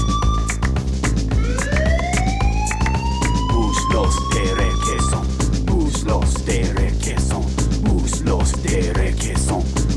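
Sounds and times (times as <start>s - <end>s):
siren wailing with rising sweeping tones: 0.0s - 5.5s
Portuguese-style dance music track with thumping beat: 0.0s - 9.9s.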